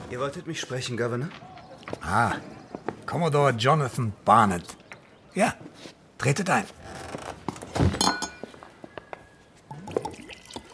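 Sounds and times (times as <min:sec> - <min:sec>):
speech: 0:00.1 - 0:07.0
glasses clinking for a toast: 0:08.0 - 0:08.6.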